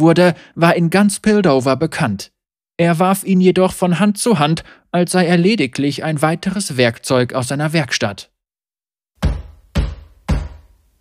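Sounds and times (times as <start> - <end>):
speech: 0.0 - 8.3
loud heavy knocks on a door: 9.2 - 10.8.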